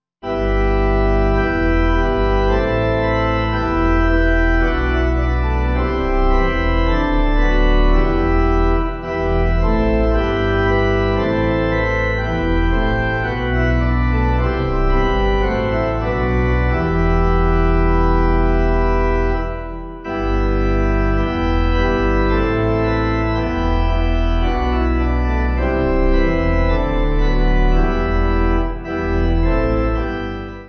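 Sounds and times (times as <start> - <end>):
pipe organ playing hymn backing: 0.2 - 30.6.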